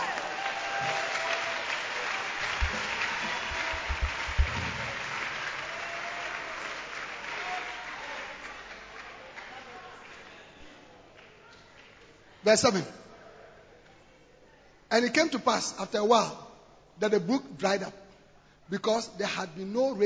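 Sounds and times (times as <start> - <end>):
church congregation clapping hands: 0.0 - 12.1
speech: 12.4 - 13.0, 14.9 - 18.0, 18.7 - 20.0.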